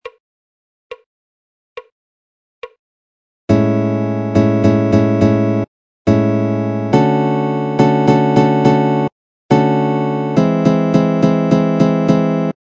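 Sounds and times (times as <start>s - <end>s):
augmented chord progression on guitar: 3.5s - 12.5s.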